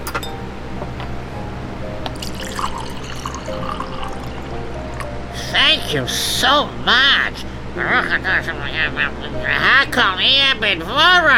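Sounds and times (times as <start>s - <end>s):
cold water pouring into a glass: 2.2s - 5.0s
glass clink: 2.2s - 5.0s
speech: 5.9s - 11.3s.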